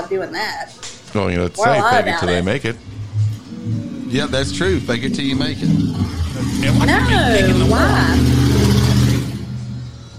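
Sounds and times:
speech: 0.1s - 2.9s, 3.6s - 8.8s
motorcycle engine revving: 2.6s - 10.1s.

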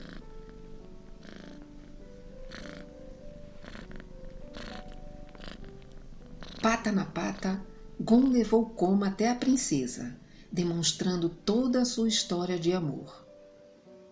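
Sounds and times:
cats purring: 0.0s - 10.5s
speech: 6.6s - 13.2s.

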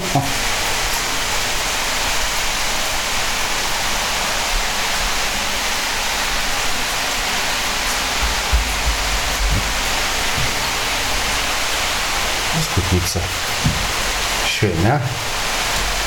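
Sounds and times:
rain falling: 0.0s - 16.0s
speech: 0.2s - 0.5s, 14.9s - 15.5s
faint low thumps: 8.1s - 11.6s.

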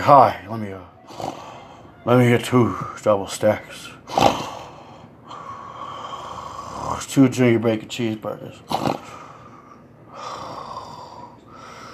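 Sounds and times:
speech: 0.0s - 1.4s, 2.0s - 4.5s, 6.9s - 9.2s
voice imitating heavy raspy wheezing breaths: 0.9s - 2.0s, 3.9s - 7.2s, 8.6s - 11.9s.

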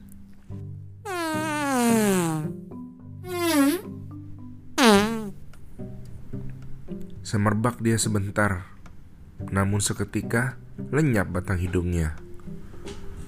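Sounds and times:
soft music: 0.0s - 13.2s
comic fart sound effects: 1.1s - 2.6s, 3.2s - 3.9s, 4.8s - 5.4s
speech: 7.3s - 8.8s, 9.5s - 12.2s.

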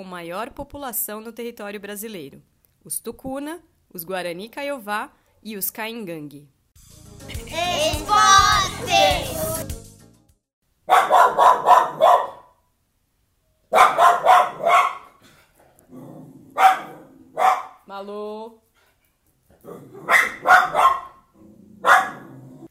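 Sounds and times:
speech: 0.0s - 9.8s
mixed-breed dog barking: 10.9s - 12.6s, 13.7s - 15.2s, 16.5s - 17.9s, 19.8s - 22.4s.

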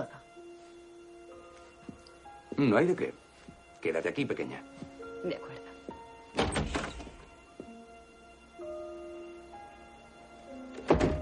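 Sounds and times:
quiet sustained musical tones: 0.0s - 11.2s
speech: 2.6s - 3.2s, 3.8s - 5.6s
hotel room door thunks as someone leaves: 6.3s - 7.3s, 10.7s - 11.2s.

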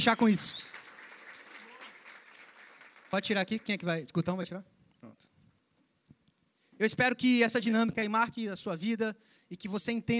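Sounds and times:
speech: 0.0s - 0.8s, 3.1s - 5.3s, 6.8s - 10.1s
audience crowd clapping: 0.0s - 4.0s.

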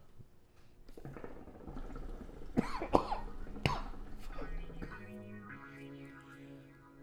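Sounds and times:
faint hum: 0.0s - 7.0s
person coughing: 2.6s - 5.2s.

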